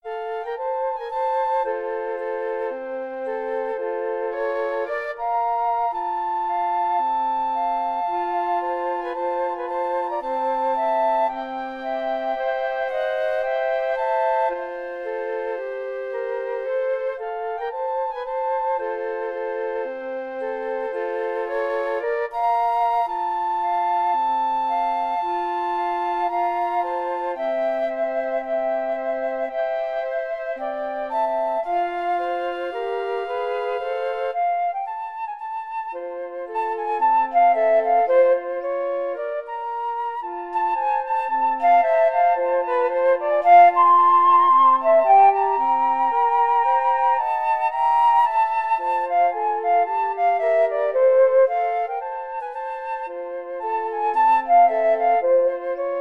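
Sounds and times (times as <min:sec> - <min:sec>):
flute trio playing: 0:00.0 - 0:56.0.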